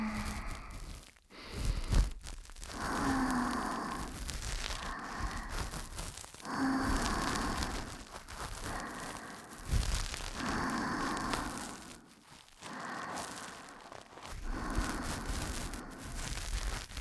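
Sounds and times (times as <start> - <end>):
ASMR ear cleaning in the left ear: 0.1 - 16.9.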